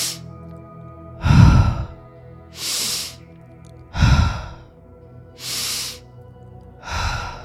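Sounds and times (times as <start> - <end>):
forceful breathing in and out through the nose during a breathwork exercise: 0.0 - 0.3, 1.2 - 2.0, 2.6 - 3.3, 3.9 - 4.7, 5.4 - 6.0, 6.8 - 7.4.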